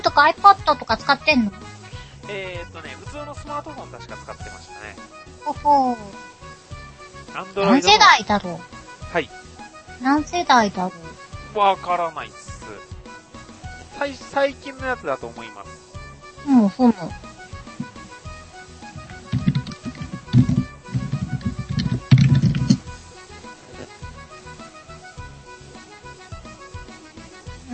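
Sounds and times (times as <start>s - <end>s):
speech: 0.1s - 6.3s, 7.3s - 12.9s, 14.0s - 15.8s, 16.4s - 17.3s
clattery computer keyboard typing: 19.2s - 22.8s.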